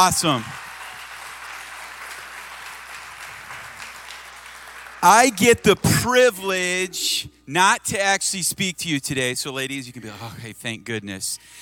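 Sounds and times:
speech: 0.0s - 0.6s, 5.0s - 11.6s
large crowd applauding a band: 0.0s - 6.9s.

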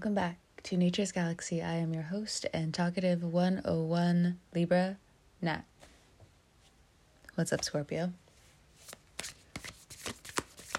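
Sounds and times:
speech: 0.0s - 5.8s, 7.4s - 8.2s
tarot cards being shuffled: 8.8s - 10.7s.

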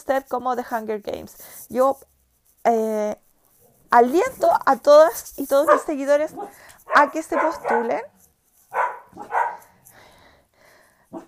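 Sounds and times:
speech: 0.0s - 3.2s, 3.9s - 8.1s
dogs barking at a passing dog outside: 5.6s - 8.1s, 8.7s - 9.8s.

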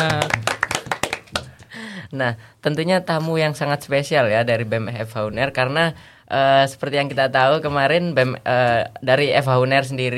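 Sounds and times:
audience hand clapping: 0.0s - 1.7s
speech: 2.1s - 10.1s.

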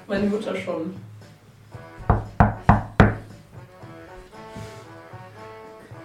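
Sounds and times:
speech: 0.1s - 1.2s
firm knocking on a door: 2.0s - 3.4s.

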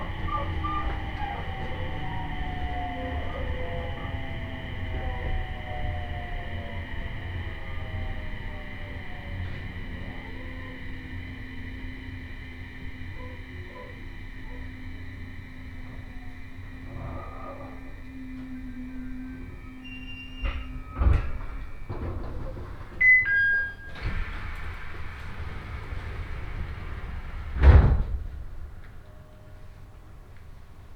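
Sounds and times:
train motor whine as the train slows: 0.0s - 27.6s
train interior rumble on a rail journey: 0.0s - 30.9s
clunks and knocks inside a train: 20.3s - 23.3s, 23.9s - 29.0s.

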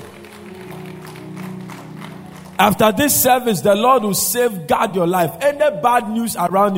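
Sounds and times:
congregation clapping: 0.0s - 4.5s
speech: 2.6s - 6.7s.

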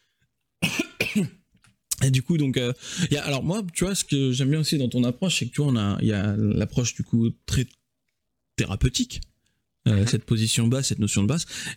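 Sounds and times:
person coughing forcefully: 0.6s - 1.4s
speech: 1.2s - 1.4s, 2.0s - 7.8s, 8.6s - 11.7s.

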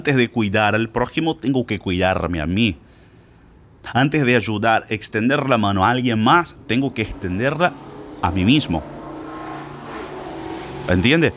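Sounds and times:
speech: 0.0s - 2.8s, 3.8s - 9.0s, 10.9s - 11.3s
car passing along an avenue with engine and tire rumble: 5.2s - 11.3s.

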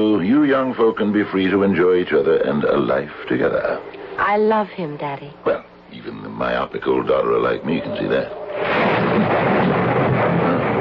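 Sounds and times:
speech: 0.3s - 9.5s
rolling rumble of thunder: 7.4s - 10.7s.

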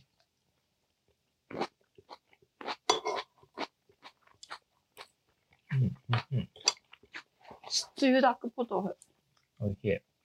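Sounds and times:
chewing crunchy lightly blanched komatsuna greens: 1.5s - 7.8s
speech: 8.0s - 10.1s.

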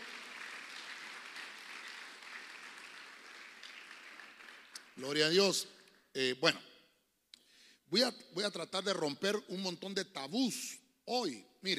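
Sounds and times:
large crowd clapping loudly: 0.0s - 5.3s
speech: 5.0s - 6.7s, 7.9s - 11.7s.

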